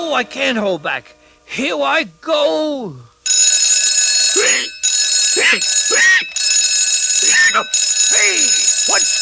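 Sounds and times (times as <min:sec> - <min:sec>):
speech: 0:00.1 - 0:03.1, 0:04.4 - 0:04.7, 0:05.4 - 0:06.4, 0:07.2 - 0:09.2
loud alarm clock ringing with a shrill steady tone: 0:03.3 - 0:09.2.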